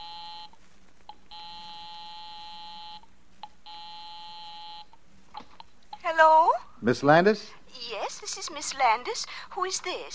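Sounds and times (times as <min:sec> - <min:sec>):
electronic house phone ringing in an apartment: 0:00.0 - 0:03.0, 0:03.6 - 0:04.9
speech: 0:06.8 - 0:10.1.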